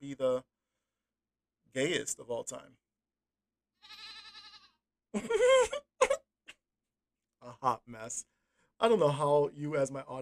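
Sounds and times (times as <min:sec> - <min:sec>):
speech: 0:00.0 - 0:00.5, 0:01.7 - 0:02.8, 0:05.1 - 0:05.8, 0:07.6 - 0:10.2
goat bleating: 0:03.8 - 0:04.8
laughter: 0:05.2 - 0:06.2.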